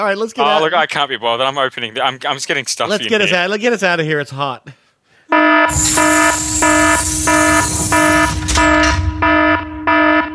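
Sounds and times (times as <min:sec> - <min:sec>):
speech: 0:00.0 - 0:04.8, 0:05.4 - 0:09.1
loud harsh alarm buzzing: 0:05.3 - 0:10.3.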